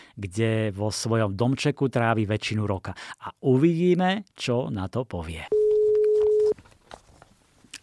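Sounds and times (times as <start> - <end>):
speech: 0.2 - 5.6
telephone ringback tone while calling a mobile phone: 5.5 - 6.6.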